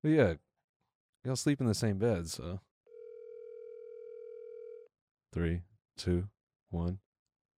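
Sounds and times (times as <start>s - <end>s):
speech: 0.0s - 0.5s, 1.2s - 2.7s, 5.3s - 7.0s
telephone ringing on an outgoing call: 2.9s - 4.9s.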